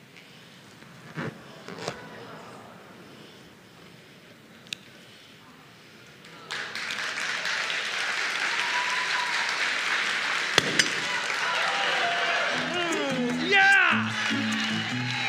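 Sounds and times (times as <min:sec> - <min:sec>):
large crowd applauding: 0:06.3 - 0:15.2.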